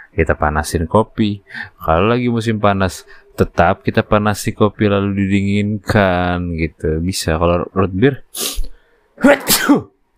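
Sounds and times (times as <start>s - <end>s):
speech: 0.1s - 8.6s, 9.2s - 9.9s
sneeze: 8.4s - 10.0s.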